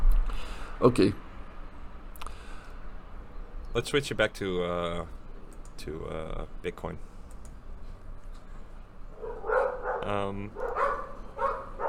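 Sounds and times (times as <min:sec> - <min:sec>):
speech: 0:00.8 - 0:01.2, 0:03.7 - 0:05.2, 0:05.8 - 0:07.1, 0:10.0 - 0:10.7
dogs barking: 0:09.2 - 0:11.8.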